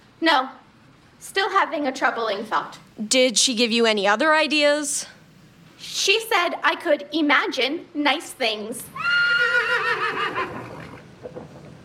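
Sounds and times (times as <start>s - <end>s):
speech: 0.2s - 0.6s, 1.2s - 5.2s, 5.8s - 9.2s
horse neighing: 8.9s - 11.1s.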